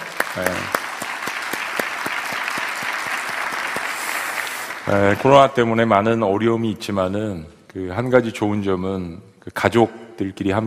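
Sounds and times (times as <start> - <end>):
audience applauding: 0.0 - 5.4
speech: 0.4 - 0.8, 4.9 - 10.6.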